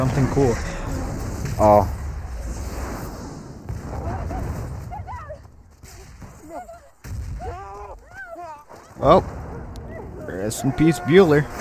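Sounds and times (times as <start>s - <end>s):
speech: 0.0s - 0.7s, 1.6s - 2.0s, 9.0s - 9.4s, 10.4s - 11.5s
deep rumbling explosion with sustained low roar: 0.0s - 8.0s, 8.9s - 10.7s
voices exclaiming: 3.9s - 11.5s.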